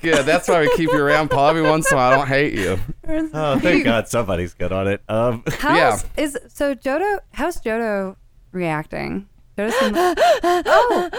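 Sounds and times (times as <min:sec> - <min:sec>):
laughter: 0:00.0 - 0:04.3, 0:05.4 - 0:06.0, 0:09.8 - 0:11.1
speech: 0:00.0 - 0:11.1
person breathing heavily with gasping breaths: 0:02.5 - 0:03.0, 0:09.7 - 0:11.1.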